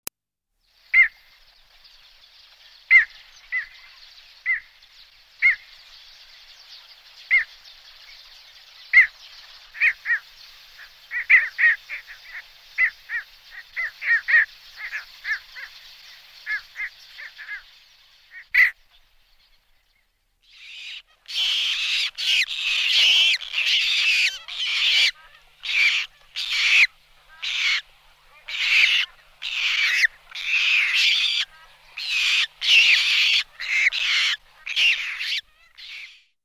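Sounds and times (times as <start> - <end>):
squacco heron calling: 2.8 - 4.8, 5.4 - 6.4, 8.9 - 19.1, 20.4 - 36.3.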